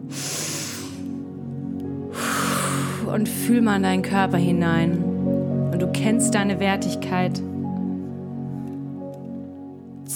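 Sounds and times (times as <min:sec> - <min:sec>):
deep breath drawn in during a guided breathing exercise: 0:00.0 - 0:01.1, 0:02.1 - 0:03.1
low sustained music tones: 0:00.0 - 0:10.1
speech: 0:03.1 - 0:07.5.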